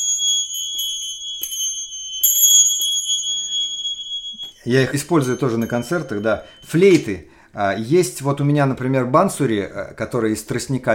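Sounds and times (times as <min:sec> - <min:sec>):
small bells of different pitches ringing: 0:00.0 - 0:08.2
speech: 0:04.6 - 0:10.9.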